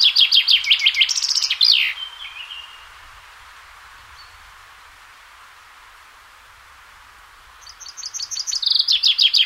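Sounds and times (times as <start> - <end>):
chaffinch song: 0.0 - 2.9, 7.6 - 9.4.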